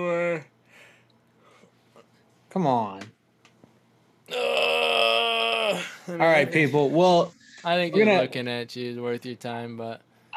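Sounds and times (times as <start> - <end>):
speech: 0.0 - 0.6, 2.5 - 3.1, 6.1 - 10.1
person yawning: 4.3 - 6.1.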